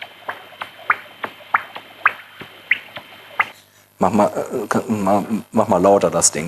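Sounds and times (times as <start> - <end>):
common noctule echolocation calls through a heterodyne detector: 0.0 - 3.5
speech: 4.0 - 6.4.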